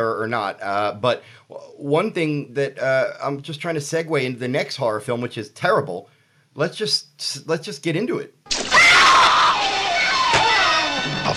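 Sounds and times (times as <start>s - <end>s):
speech: 0.0s - 8.7s
unearthly shriek in a horror film trailer: 8.6s - 11.3s.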